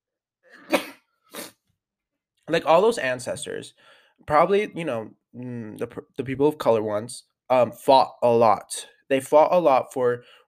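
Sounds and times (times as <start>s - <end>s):
person sneezing: 0.5s - 1.6s
noisy exhale or sniff: 0.6s - 1.6s
speech: 2.5s - 10.4s.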